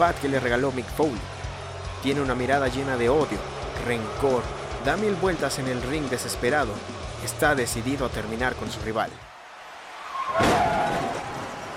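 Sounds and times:
speech: 0:00.0 - 0:01.4, 0:02.0 - 0:09.3
loud crash: 0:10.3 - 0:11.7.

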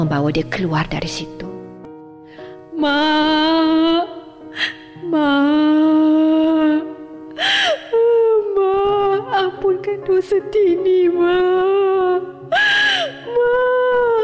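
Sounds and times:
speech: 0:00.0 - 0:01.4, 0:02.8 - 0:03.8, 0:04.5 - 0:05.7, 0:09.9 - 0:12.3
woman gasping: 0:04.5 - 0:05.0, 0:07.4 - 0:08.0, 0:12.5 - 0:13.3
woman wailing and sobbing: 0:04.6 - 0:09.5, 0:11.2 - 0:14.2.

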